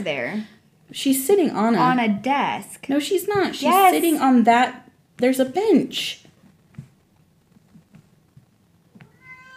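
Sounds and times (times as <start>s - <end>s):
speech: 0.0s - 6.3s
cat meowing angrily: 9.0s - 9.5s.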